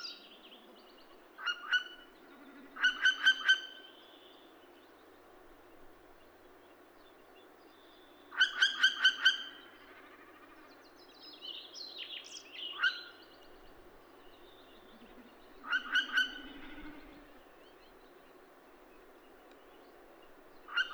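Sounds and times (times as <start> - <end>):
adult Northern Hawk Owl vit vit vit calls: 1.4 - 3.9, 8.3 - 10.7, 12.7 - 17.5, 20.6 - 20.9.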